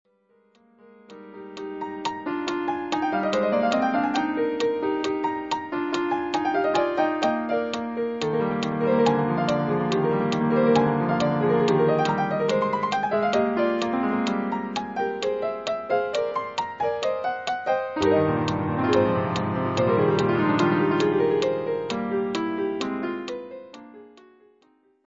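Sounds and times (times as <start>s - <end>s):
MIDI classical music: 0.6s - 24.7s.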